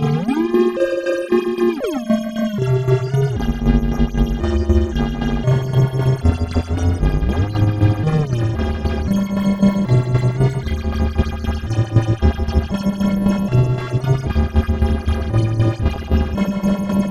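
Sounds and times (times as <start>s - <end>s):
gliding wavering notes: 0.0s - 3.7s
loud resonant bass drone: 0.0s - 17.0s.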